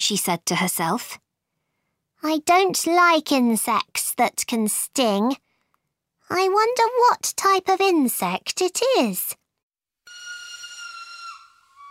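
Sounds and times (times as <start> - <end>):
speech: 0.0 - 1.2, 2.2 - 5.4, 6.3 - 9.4
loud shrill train whistle blasting: 10.1 - 11.8.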